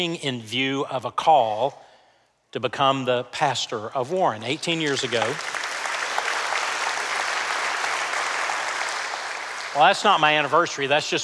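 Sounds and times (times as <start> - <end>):
speech: 0.0 - 1.8, 2.5 - 5.6, 9.8 - 11.2
large indoor crowd applauding: 4.6 - 10.6.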